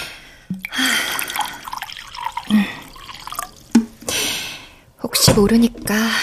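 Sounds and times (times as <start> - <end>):
barley tea poured into a large rice bowl: 0.5 - 3.9
speech: 5.3 - 6.2.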